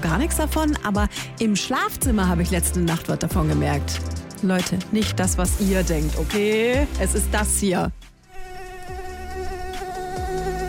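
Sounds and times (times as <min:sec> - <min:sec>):
speech: 0:00.1 - 0:08.1
mosquito whining in a bed at night: 0:08.2 - 0:10.6.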